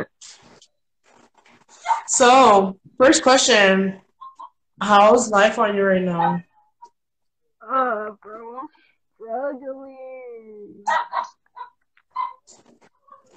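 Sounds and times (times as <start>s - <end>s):
dog barking: 1.8s - 2.1s, 6.1s - 6.6s, 10.8s - 13.3s
speech: 2.1s - 4.0s, 4.8s - 6.5s, 7.6s - 10.1s
dog high drawn-out whining yips: 4.2s - 4.6s, 10.9s - 13.3s.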